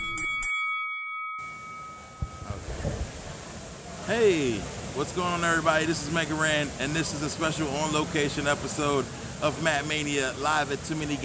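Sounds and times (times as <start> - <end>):
bell struck with a bright metallic tone: 0.0 - 2.7
speech: 4.1 - 11.2.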